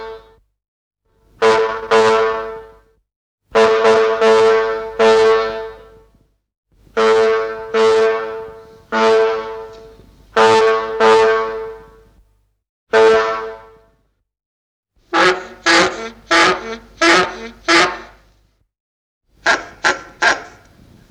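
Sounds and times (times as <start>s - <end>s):
old car horns: 1.4s - 2.7s, 3.6s - 5.9s, 7.0s - 12.0s, 13.0s - 13.8s, 15.1s - 18.3s, 19.4s - 21.0s.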